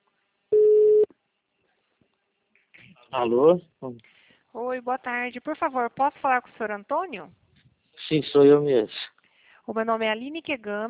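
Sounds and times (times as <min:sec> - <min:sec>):
telephone ringing tone beep of an outgoing call: 0:00.5 - 0:01.1
speech: 0:03.1 - 0:07.4, 0:08.1 - 0:09.0, 0:09.7 - 0:10.8.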